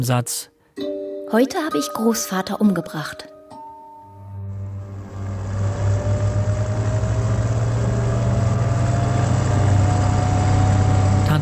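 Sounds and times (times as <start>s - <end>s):
speech: 0.0s - 3.3s
car engine driving: 4.5s - 11.4s.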